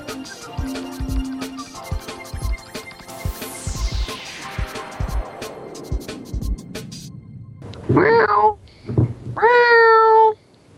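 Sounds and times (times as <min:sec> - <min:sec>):
falling whistle-like sweep: 0:00.1 - 0:07.6
person imitating cat meows: 0:08.0 - 0:08.6, 0:09.4 - 0:10.4.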